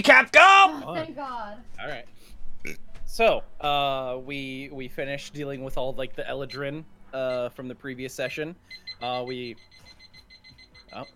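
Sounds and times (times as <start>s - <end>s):
speech: 0.0s - 2.0s, 3.1s - 10.0s, 10.9s - 11.1s
timer alarm electronic tone: 8.2s - 11.1s.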